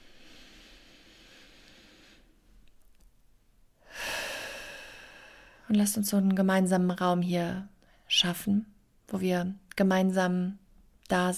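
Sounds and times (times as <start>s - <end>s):
deep breath in through the nose and out through the mouth during a guided relaxation exercise: 0.0s - 2.6s, 3.8s - 5.7s
speech: 5.7s - 11.3s.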